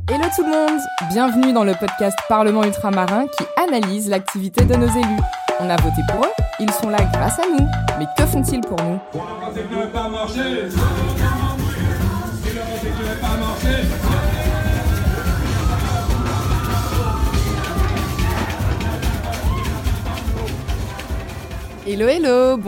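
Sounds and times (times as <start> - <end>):
pounding festive music: 0.1 - 9.1, 10.7 - 22.6
speech: 0.3 - 11.5, 21.9 - 22.6
lively crowd singing and shouting at a Caribbean Christmas carol gathering: 9.0 - 22.0
crowd cheering: 13.2 - 21.9.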